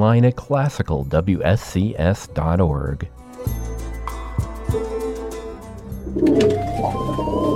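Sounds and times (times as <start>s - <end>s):
speech: 0.0s - 3.6s, 6.1s - 7.5s
homing pigeons cooing: 6.0s - 7.5s.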